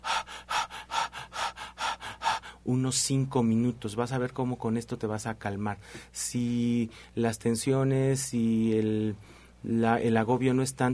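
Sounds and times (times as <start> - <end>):
rapid hyperventilation breathing to vent distress: 0.0 - 2.7, 6.9 - 7.2, 9.2 - 9.6
speech: 2.6 - 10.9.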